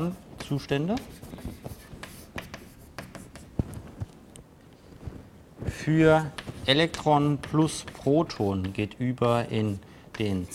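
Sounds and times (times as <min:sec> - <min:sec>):
speech: 0:00.0 - 0:01.4, 0:05.9 - 0:10.5
writing an equation on a board during a physics lecture: 0:00.0 - 0:03.7, 0:06.3 - 0:10.5.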